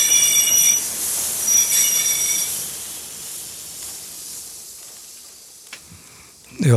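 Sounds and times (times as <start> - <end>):
train pulling into station with wheels squealing: 0.0 - 4.6
steady broadband rumble and hiss of a train: 0.0 - 6.7.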